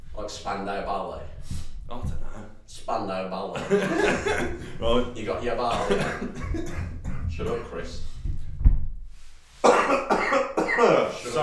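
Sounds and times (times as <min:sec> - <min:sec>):
speech: 0:00.2 - 0:08.1, 0:10.8 - 0:11.4
laughter: 0:03.6 - 0:07.9
man coughing: 0:05.7 - 0:07.9, 0:09.6 - 0:11.2.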